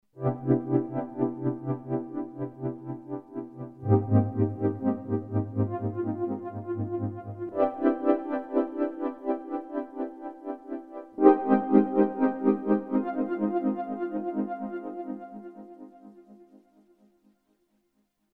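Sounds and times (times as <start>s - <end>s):
chillout synthesizer pad on a Yamaha SY55: 0.2s - 16.8s.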